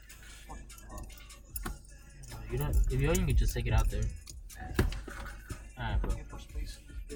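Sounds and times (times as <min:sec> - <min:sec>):
keys jangling while being pulled out: 0:00.7 - 0:04.6
speech: 0:02.5 - 0:04.2.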